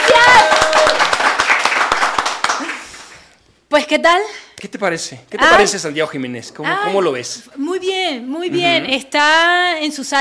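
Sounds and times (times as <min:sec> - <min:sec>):
audience applauding: 0:00.0 - 0:03.3
speech: 0:03.8 - 0:10.1.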